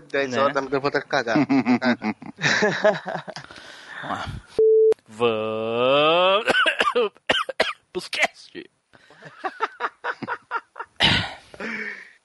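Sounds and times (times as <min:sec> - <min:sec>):
speech: 0:00.1 - 0:07.2, 0:08.0 - 0:09.6
laughter: 0:01.3 - 0:03.5, 0:09.1 - 0:11.0
sharp cough: 0:06.5 - 0:07.8, 0:11.0 - 0:11.4.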